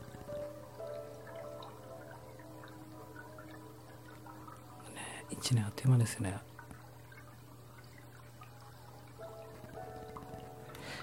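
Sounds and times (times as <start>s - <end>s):
low hum from mobile phone interference in microphone: 0.0s - 11.0s
mobile phone radio interference crackling buzz in microphone: 0.0s - 11.0s
speech: 5.3s - 6.5s.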